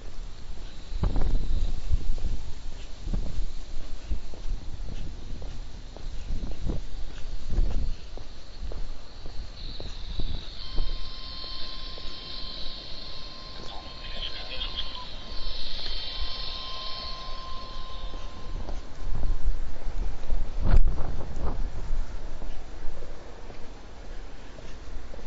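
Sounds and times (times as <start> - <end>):
steady insect chirring outdoors: 0.0 - 22.3
two-way radio transceiver squelch click: 9.8 - 19.0.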